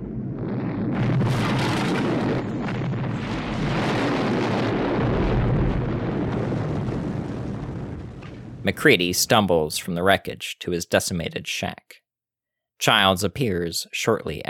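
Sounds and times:
dynamite explosion tearing apart a compound: 0:00.0 - 0:09.4
speech: 0:08.7 - 0:12.0, 0:12.8 - 0:14.4.

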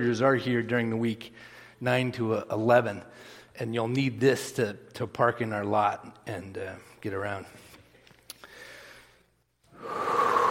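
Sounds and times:
speech: 0:00.0 - 0:07.6
deep breath: 0:01.3 - 0:01.8, 0:03.1 - 0:03.6, 0:08.4 - 0:10.4.

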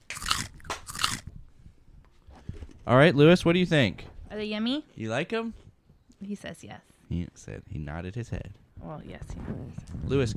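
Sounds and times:
chewing: 0:00.1 - 0:01.3
someone biting into a crispy chip: 0:00.1 - 0:01.3
speech: 0:02.9 - 0:05.6, 0:06.2 - 0:10.3.

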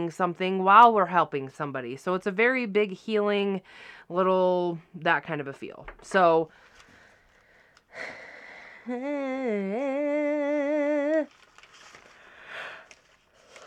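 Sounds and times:
speech: 0:00.0 - 0:06.7, 0:08.0 - 0:08.2, 0:08.8 - 0:11.4
faint breaths: 0:03.6 - 0:04.1, 0:06.5 - 0:09.1, 0:11.6 - 0:13.6
person yawning after finishing a session: 0:08.7 - 0:11.3.

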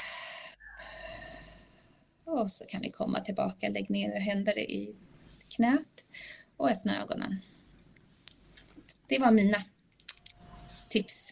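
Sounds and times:
person exhaling during a breathing exercise: 0:00.0 - 0:01.9
speech: 0:02.4 - 0:07.5, 0:09.1 - 0:09.7, 0:10.9 - 0:11.2.

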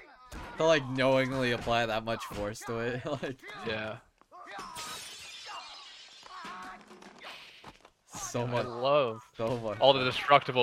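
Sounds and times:
speech: 0:00.6 - 0:04.1, 0:08.3 - 0:10.6
breakaway glass shattering in a staged fight scene: 0:04.5 - 0:07.1.

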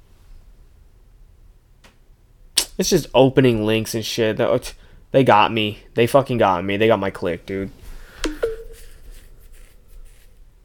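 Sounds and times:
speech: 0:02.8 - 0:07.8
faint rustling: 0:07.4 - 0:10.6
short two-note electronic phone chime: 0:08.3 - 0:08.9.

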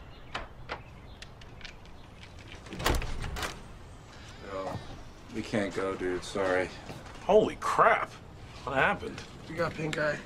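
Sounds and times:
locked front door of a house rattling in its frame: 0:02.3 - 0:03.8
locked front door handle jiggling: 0:02.5 - 0:03.8
speech: 0:05.4 - 0:10.2.

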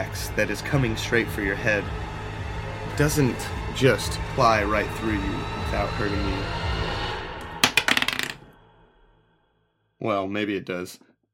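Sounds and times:
speech: 0:00.0 - 0:02.1, 0:03.0 - 0:06.7, 0:10.0 - 0:11.1
dice rolling on a hard table: 0:07.6 - 0:08.4.

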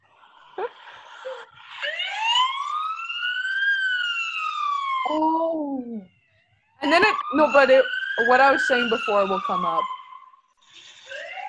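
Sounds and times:
person imitating a Canadian police car siren: 0:00.6 - 0:03.0, 0:03.6 - 0:06.1, 0:06.8 - 0:09.9
speech: 0:06.9 - 0:10.0.

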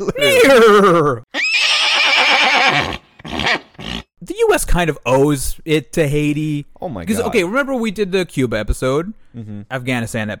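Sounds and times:
speech: 0:00.0 - 0:01.3, 0:04.5 - 0:10.3
horse neighing: 0:00.2 - 0:04.1
horse snorting: 0:02.0 - 0:04.1.

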